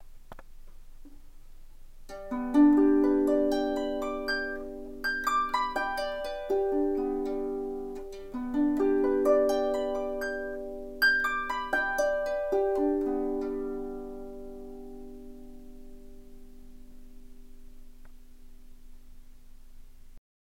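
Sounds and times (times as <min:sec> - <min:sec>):
harp arpeggio: 0:02.1 - 0:18.4.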